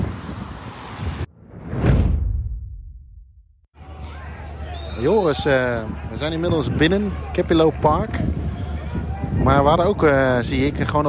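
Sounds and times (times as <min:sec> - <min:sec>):
strong wind blowing outdoors across the microphone: 0:00.0 - 0:02.3, 0:03.8 - 0:11.0
speech: 0:05.0 - 0:08.4, 0:09.4 - 0:11.0.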